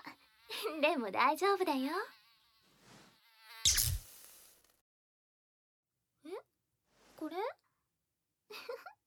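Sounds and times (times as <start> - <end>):
housefly buzzing: 0.0 - 4.7
speech: 0.6 - 2.2.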